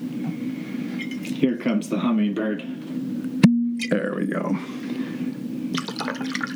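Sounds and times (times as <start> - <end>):
low hum: 0.0 - 6.5
speech: 1.4 - 3.2, 3.9 - 4.9
vodka being poured into a glass: 4.8 - 6.5.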